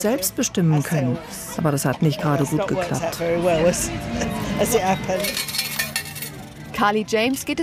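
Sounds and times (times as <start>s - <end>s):
speech: 0.0s - 5.6s, 6.8s - 7.6s
faint murmur of voices: 0.0s - 7.6s
coins clinking and jingling out of a change machine: 5.2s - 6.4s.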